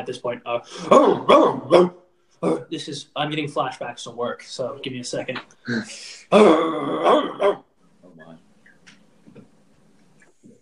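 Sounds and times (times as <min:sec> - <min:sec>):
speech: 0:00.0 - 0:07.6
rough deep dog barking: 0:00.9 - 0:02.0.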